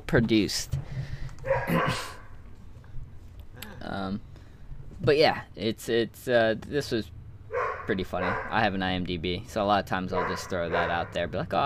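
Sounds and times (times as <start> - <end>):
low steady hum: 0.0 - 11.6
speech: 0.1 - 0.8, 1.7 - 2.2, 3.8 - 4.3, 5.0 - 7.2, 7.9 - 11.6
dogs barking: 1.4 - 2.4, 7.5 - 8.7, 10.1 - 11.3.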